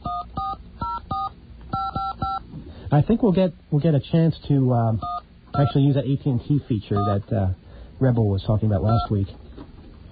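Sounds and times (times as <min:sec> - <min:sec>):
touch-tone telephone dialing beeps: 0:00.0 - 0:02.4, 0:05.0 - 0:05.8, 0:07.0 - 0:07.2, 0:08.9 - 0:09.1
speech: 0:02.9 - 0:09.4.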